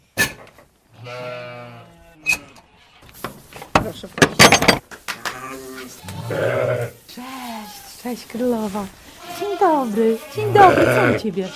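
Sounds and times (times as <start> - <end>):
speech: 1.0 - 1.6, 3.9 - 4.8, 6.0 - 7.3, 8.0 - 9.0, 9.6 - 11.5
sheep bleating: 1.0 - 3.0, 5.3 - 8.1, 9.0 - 11.5
clattering: 3.7 - 4.9.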